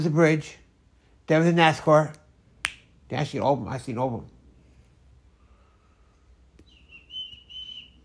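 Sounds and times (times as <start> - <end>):
speech: 0.0 - 0.6, 1.3 - 2.2, 3.1 - 4.3
person whistling a sustained high note: 6.7 - 8.0.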